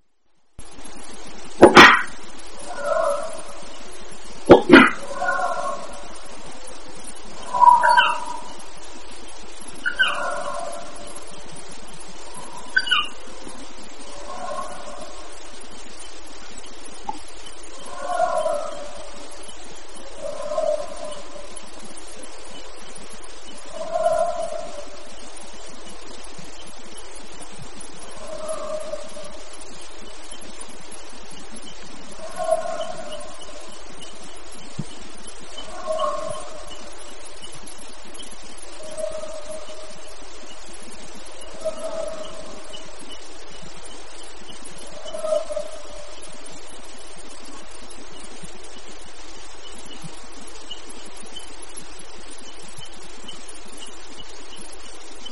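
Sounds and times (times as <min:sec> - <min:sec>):
howling: 0:01.7 - 0:08.8, 0:09.7 - 0:15.7, 0:17.6 - 0:37.1, 0:38.6 - 0:46.8.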